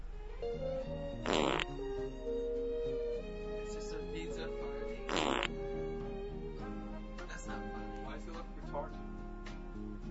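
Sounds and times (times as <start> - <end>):
music with sustained tones: 0.1 - 10.0
loud raspy fart: 1.2 - 1.8, 5.1 - 5.6.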